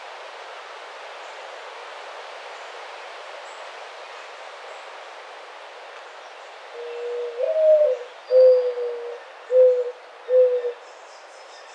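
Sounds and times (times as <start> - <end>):
steady background hiss: 0.0 - 11.7
mourning dove cooing: 6.8 - 10.8.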